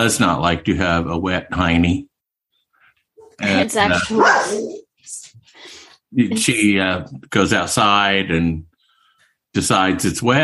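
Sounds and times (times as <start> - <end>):
speech: 0.0 - 2.1, 3.4 - 8.7, 9.5 - 10.4
dog barking and growling: 3.2 - 4.9.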